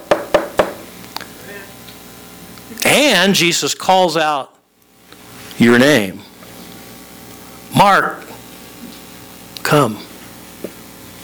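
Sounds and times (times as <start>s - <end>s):
knocking on a door: 0.0s - 0.9s
speech: 2.7s - 4.6s, 5.6s - 6.3s, 7.8s - 8.2s, 9.7s - 10.1s.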